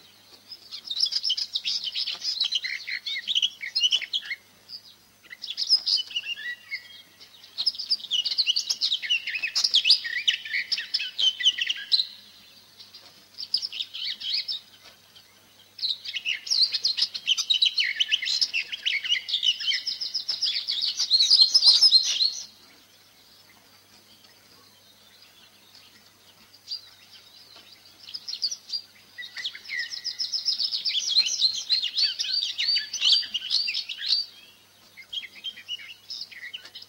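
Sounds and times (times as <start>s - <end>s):
garden warbler singing bubbling warbled phrases: 0.0s - 36.8s.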